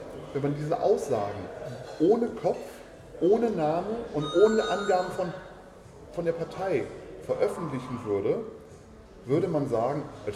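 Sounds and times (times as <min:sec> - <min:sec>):
speech: 0:00.4 - 0:05.4, 0:06.2 - 0:08.6, 0:09.2 - 0:10.3
telephone ringing with a high electronic trill: 0:04.2 - 0:05.5.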